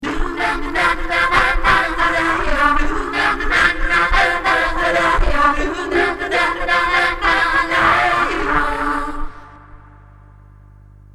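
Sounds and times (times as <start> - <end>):
choir filtered through a filterbank: 0.0 - 10.3.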